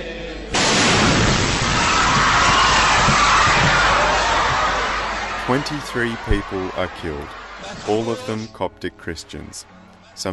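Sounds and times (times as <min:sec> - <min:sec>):
car bomb exploding outside a church: 0:00.5 - 0:04.7
sustained harsh roar of broadband noise: 0:01.4 - 0:08.1
speech: 0:05.5 - 0:10.3.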